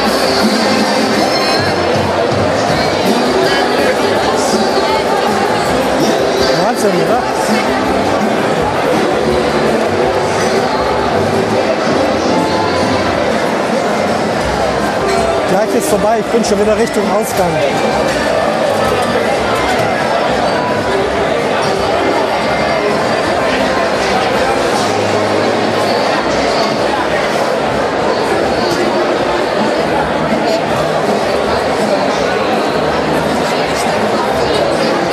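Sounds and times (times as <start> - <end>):
dense crowd of people chattering: 0.0 - 35.1
speech: 15.8 - 18.3.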